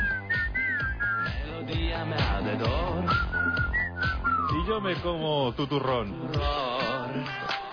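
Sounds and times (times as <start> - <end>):
person whistling a bright melodic tune: 0.0 - 1.4, 2.9 - 4.7
speech: 2.0 - 3.3, 4.7 - 7.6.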